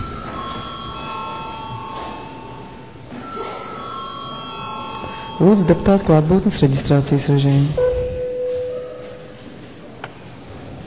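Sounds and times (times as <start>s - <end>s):
parliament chamber bell ringing: 0.0s - 6.6s, 7.8s - 9.4s
speech: 5.4s - 7.8s.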